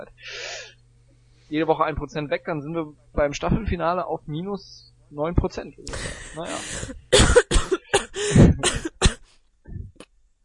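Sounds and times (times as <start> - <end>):
speech: 0.0 - 0.7, 1.5 - 7.4
strained harsh coughing after choking: 6.0 - 9.2
soft throat-clearing rasp: 6.4 - 9.3.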